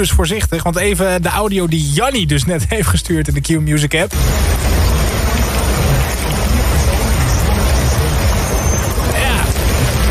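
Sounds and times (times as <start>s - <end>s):
speech: 0.0s - 5.1s
deep low rumble: 4.1s - 10.0s
pounding rain in a storm: 4.1s - 10.0s
wind in a storm: 4.1s - 10.0s.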